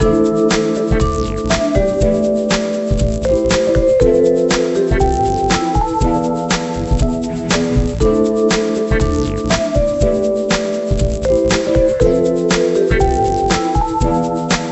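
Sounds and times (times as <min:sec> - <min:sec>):
background music bed: 0:00.0 - 0:14.7.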